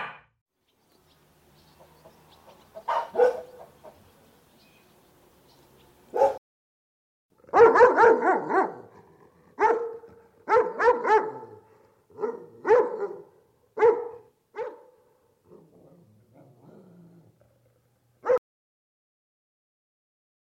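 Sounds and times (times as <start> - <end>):
dog barking: 2.8 - 3.7, 6.1 - 6.4, 7.4 - 15.7, 18.2 - 18.4.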